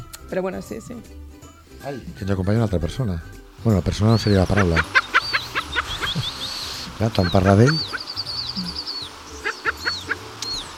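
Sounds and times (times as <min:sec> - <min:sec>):
speech: 0:00.3 - 0:05.0, 0:07.0 - 0:08.0
laughter: 0:04.0 - 0:07.9
western capercaillie calling in a forest: 0:04.0 - 0:10.7.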